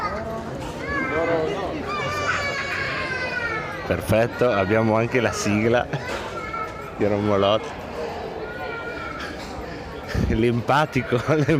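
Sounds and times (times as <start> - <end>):
general bustle: 0.0 - 11.5
other children's voices: 0.0 - 11.5
young child crying in high-pitched wails: 0.8 - 3.9, 4.5 - 7.3, 8.1 - 10.3
speech: 3.9 - 6.2, 7.0 - 7.8, 10.4 - 11.5
laughter: 11.0 - 11.5.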